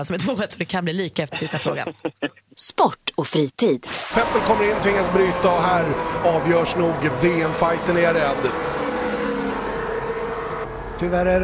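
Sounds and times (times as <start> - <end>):
speech: 0.0 - 8.8, 11.0 - 11.4
laughter: 1.3 - 2.4
Formula 1 race car engine revving at the Japanese Grand Prix: 3.9 - 11.4.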